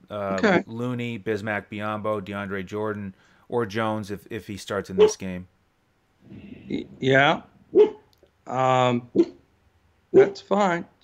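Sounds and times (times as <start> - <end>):
speech: 0.1 - 5.6, 6.3 - 7.9, 8.5 - 9.4, 10.1 - 11.0
dog barking: 5.0 - 5.2, 7.8 - 8.1, 9.2 - 9.4, 10.2 - 10.4.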